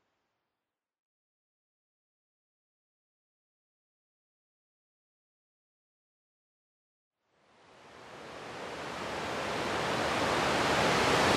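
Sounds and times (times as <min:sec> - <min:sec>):
waterfall rushing water: 0:07.8 - 0:11.3.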